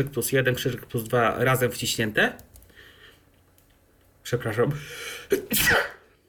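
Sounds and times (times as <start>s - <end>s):
speech: 0.0s - 2.5s, 4.2s - 6.2s
person sneezing: 5.3s - 6.1s.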